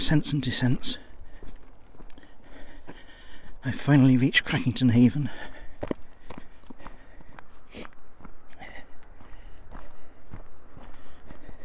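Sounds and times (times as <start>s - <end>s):
footsteps crunching and scuffing on a path leading down into a village: 0.0s - 11.6s
speech: 0.1s - 1.0s, 3.6s - 6.0s.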